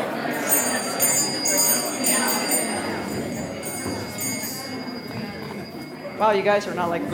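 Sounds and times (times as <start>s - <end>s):
busy room of overlapping voices chattering: 0.0s - 7.1s
bell ringing with a bright sustained tone to signal silence: 0.1s - 6.8s
speech: 6.2s - 7.1s.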